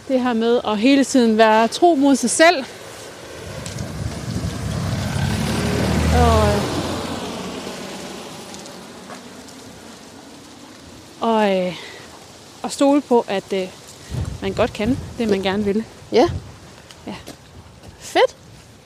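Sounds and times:
steady rain-like hiss: 0.0 - 18.8
speech: 0.1 - 2.8, 6.2 - 6.4, 11.4 - 11.9, 12.6 - 13.8, 14.4 - 17.3, 18.1 - 18.3
car passing by: 2.1 - 12.5.

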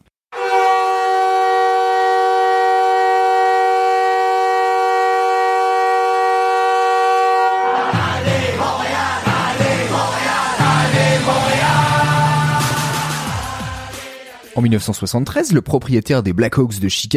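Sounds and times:
yacht horn used as hockey goal horn in the Chicago Stadium: 0.3 - 8.2, 9.4 - 13.8
roaring arena crowd cheering: 7.5 - 14.5
speech: 14.6 - 17.1.

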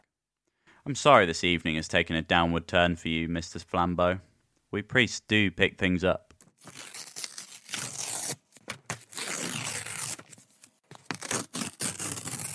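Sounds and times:
speech: 0.8 - 7.0
paper wrapping ripped open on a parcel: 6.6 - 12.5.

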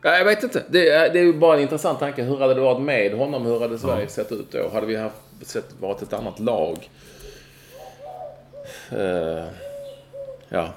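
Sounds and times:
speech: 0.0 - 7.2, 8.7 - 9.7, 10.5 - 10.7
bird calling, possibly owl or gull: 6.1 - 10.7.

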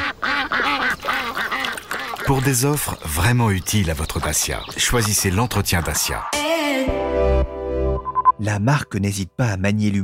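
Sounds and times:
duck quacking in quick nasal bursts: 0.0 - 2.3
speech: 2.3 - 7.0, 8.4 - 10.0.

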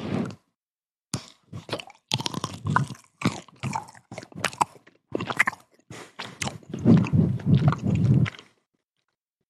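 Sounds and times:
mouth smacking: 1.1 - 8.6
chewing a chocolate ganache dessert with mini blueberry bits: 1.2 - 9.2.

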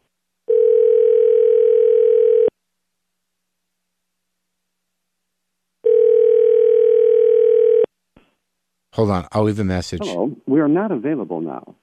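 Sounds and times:
buzzing telephone ring tones on the line: 0.5 - 2.5, 5.8 - 7.9
speech: 9.0 - 11.8.

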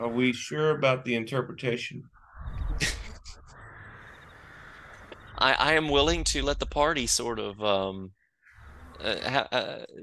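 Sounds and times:
speech: 0.0 - 2.2, 2.8 - 3.0, 5.4 - 8.2, 9.0 - 10.0
low rumbling background: 2.1 - 9.8
raven cawing: 3.6 - 5.4.

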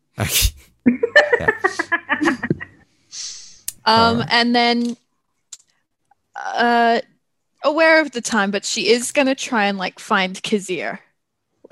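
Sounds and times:
speech: 0.2 - 1.0, 3.9 - 5.0, 6.4 - 11.1
laughter: 0.9 - 2.8, 4.0 - 4.3
person acting out a sneeze: 4.0 - 4.3.

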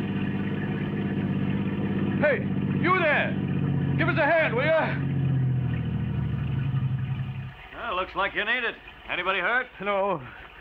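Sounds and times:
car engine humming: 0.0 - 7.8
speech: 2.2 - 3.4, 4.0 - 5.1, 8.0 - 10.4.

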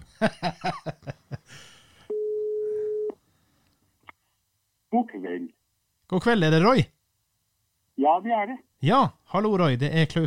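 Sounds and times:
speech: 0.2 - 1.0, 6.1 - 7.0, 8.2 - 10.2
telephone ringback tone while calling: 2.1 - 3.1.

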